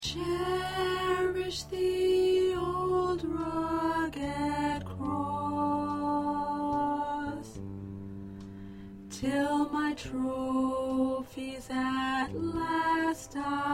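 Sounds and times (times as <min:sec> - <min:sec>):
soprano chorus singing: 0:00.0 - 0:07.9, 0:09.1 - 0:13.7.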